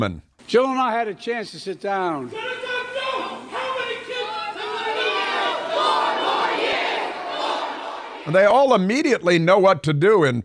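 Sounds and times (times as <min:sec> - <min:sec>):
speech: 0:00.0 - 0:02.7, 0:08.2 - 0:10.4
large crowd heckling at a political rally: 0:02.3 - 0:08.3.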